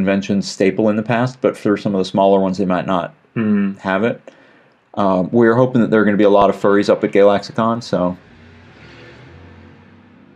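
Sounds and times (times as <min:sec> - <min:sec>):
speech: 0:00.0 - 0:04.4, 0:05.0 - 0:08.3
steady broadband road noise: 0:05.7 - 0:10.3
delivery truck engine rumbling outside: 0:05.9 - 0:10.3.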